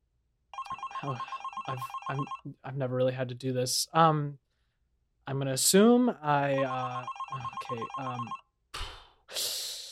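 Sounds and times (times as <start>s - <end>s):
telephone bell ringing: 0.6s - 2.4s, 6.6s - 8.4s
speech: 1.0s - 4.4s, 5.3s - 8.4s.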